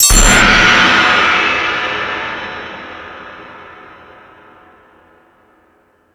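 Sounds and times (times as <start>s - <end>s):
drum machine crash cymbal: 0.0s - 4.1s.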